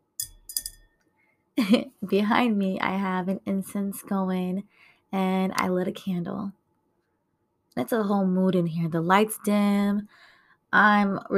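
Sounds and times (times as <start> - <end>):
glass of wine clinking: 0.2 - 0.9
speech: 1.6 - 6.6, 7.8 - 11.3.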